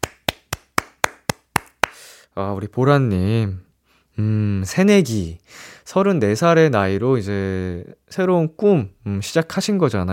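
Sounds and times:
crisp hand claps: 0.0s - 2.0s
speech: 2.4s - 3.6s, 4.2s - 10.1s.

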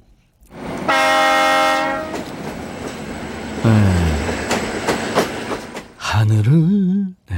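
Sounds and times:
steady rumble of a passing train: 0.5s - 6.3s
train horn blaring: 0.6s - 2.3s.

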